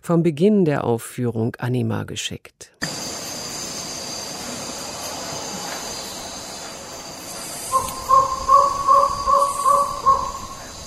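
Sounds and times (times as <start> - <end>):
speech: 0.0 - 2.8
hiss: 2.7 - 10.8
crow-like bird cawing: 7.7 - 10.8.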